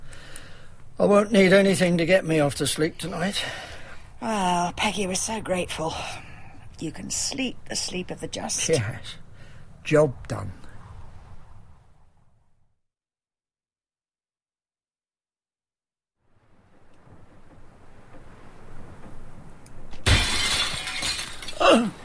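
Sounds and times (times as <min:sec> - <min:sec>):
speech: 0:01.0 - 0:09.2, 0:09.8 - 0:10.7
glass shattering: 0:19.9 - 0:22.0.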